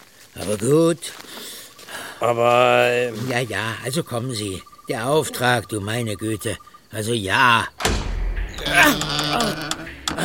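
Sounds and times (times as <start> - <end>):
speech: 0.4 - 1.3, 2.2 - 8.0
heavy thick church door creaking and thudding: 7.8 - 10.2.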